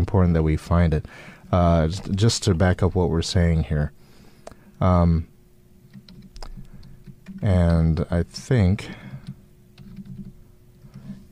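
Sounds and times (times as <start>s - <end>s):
low steady hum: 0.0s - 11.2s
speech: 0.1s - 4.0s, 4.8s - 5.3s, 7.4s - 9.0s
typing on a computer keyboard: 5.9s - 7.8s, 9.1s - 11.1s.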